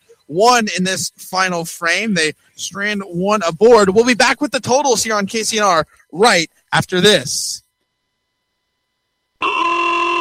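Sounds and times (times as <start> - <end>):
speech: 0.3 - 7.6
loud continuous car horn honk: 9.4 - 10.1.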